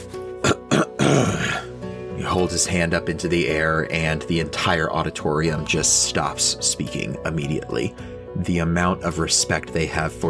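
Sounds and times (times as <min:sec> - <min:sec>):
person clearing throat: 0:00.4 - 0:01.7
speech: 0:02.3 - 0:10.2.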